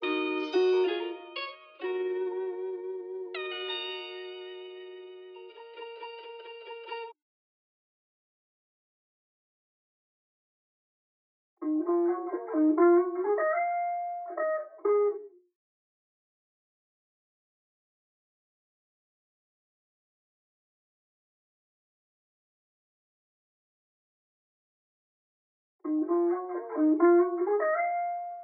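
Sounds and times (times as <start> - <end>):
135 BPM guitar melody loop in D sharp minor: 0.0 - 7.1, 11.6 - 15.4, 25.9 - 28.4.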